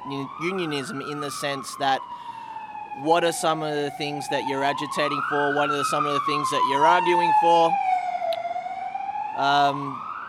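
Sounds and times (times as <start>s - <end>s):
ambulance siren wailing outside: 0.0s - 10.2s
speech: 0.1s - 2.3s, 3.0s - 7.9s, 9.4s - 10.1s.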